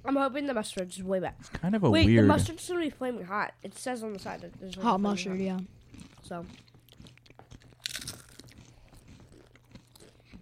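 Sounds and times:
speech: 0:00.0 - 0:06.7
crunching on tangy ketchup-flavoured chips: 0:05.8 - 0:10.4.

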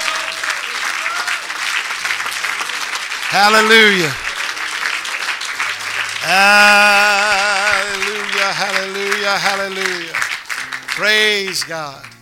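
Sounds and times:
crowd clapping: 0:00.0 - 0:12.1
man calling out loudly: 0:03.3 - 0:04.2, 0:06.2 - 0:10.1, 0:11.0 - 0:12.0
speech: 0:03.3 - 0:04.2, 0:06.2 - 0:07.4, 0:08.5 - 0:10.2, 0:11.0 - 0:12.1.

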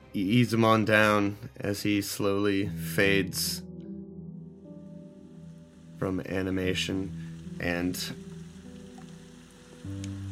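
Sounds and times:
speech: 0:00.1 - 0:03.7, 0:06.0 - 0:08.2, 0:09.8 - 0:10.2
steady rain on a surface: 0:04.9 - 0:10.3.

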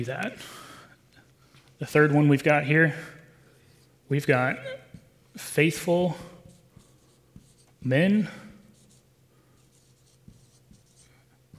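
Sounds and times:
speech: 0:00.0 - 0:00.6, 0:01.8 - 0:03.2, 0:04.1 - 0:04.8, 0:05.4 - 0:06.3, 0:07.8 - 0:08.4
chalk or marker scratching across a board in handwriting: 0:05.0 - 0:11.5.

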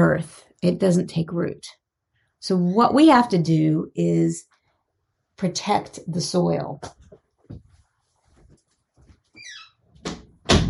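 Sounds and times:
speech: 0:00.0 - 0:01.8, 0:02.4 - 0:04.5, 0:05.4 - 0:07.6
soft knocks and handling sounds of a door: 0:10.0 - 0:10.6.

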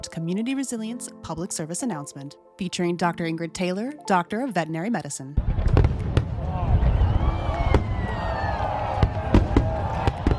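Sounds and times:
speech: 0:00.0 - 0:05.8
fireworks bangs and cracks: 0:05.4 - 0:10.3.

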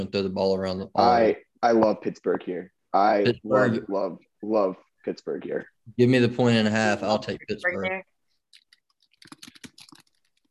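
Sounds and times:
speech: 0:00.0 - 0:08.1
crisp clicking keystrokes typing on a keyboard: 0:08.6 - 0:10.4.

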